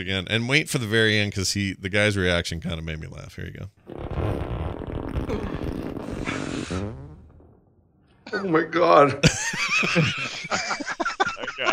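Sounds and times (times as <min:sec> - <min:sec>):
speech: 0:00.0 - 0:04.4, 0:05.3 - 0:07.0, 0:08.3 - 0:11.0
perforated leather ripping as fart sound effect: 0:03.9 - 0:07.2
laughter: 0:09.2 - 0:11.7.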